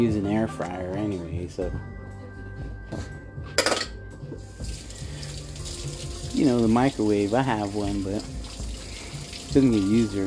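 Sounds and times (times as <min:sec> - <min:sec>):
speech: 0:00.0 - 0:02.0, 0:06.4 - 0:08.4, 0:09.5 - 0:10.2
water splashing while hands are washed: 0:04.6 - 0:10.2.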